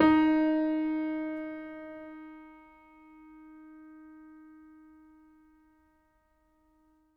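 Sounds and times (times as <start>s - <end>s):
stereo acoustic piano: 0.0s - 5.1s.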